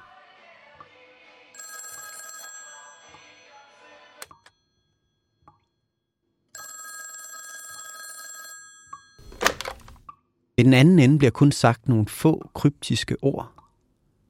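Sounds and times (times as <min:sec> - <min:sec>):
telephone bell ringing in an apartment: 0:01.6 - 0:05.4, 0:06.6 - 0:09.4
speech: 0:10.6 - 0:13.6.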